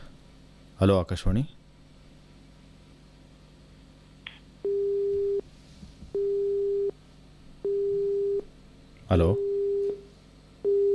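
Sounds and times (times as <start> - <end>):
speech: 0.8 - 1.6, 9.1 - 9.4
telephone busy tone after a call is disconnected: 4.6 - 5.4, 6.2 - 6.9, 7.6 - 8.4, 9.4 - 10.0, 10.6 - 10.9.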